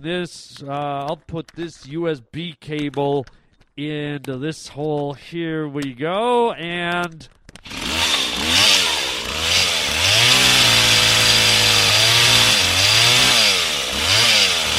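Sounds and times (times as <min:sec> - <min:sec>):
speech: 0:00.0 - 0:07.8
chainsaw sound played from a computer revving: 0:07.6 - 0:14.7.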